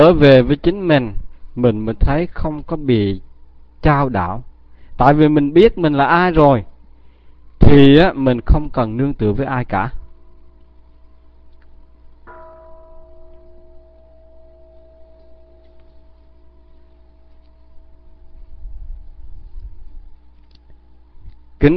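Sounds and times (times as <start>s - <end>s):
speech: 0.0s - 6.7s, 7.6s - 10.0s
faint hum: 0.0s - 21.7s
Buddhist temple bell struck: 12.2s - 19.8s.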